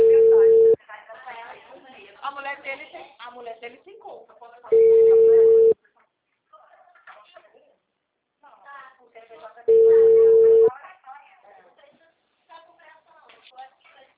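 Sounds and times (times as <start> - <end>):
telephone line tone from a dropped call: 0.0 - 0.8, 4.7 - 5.8, 9.7 - 10.7.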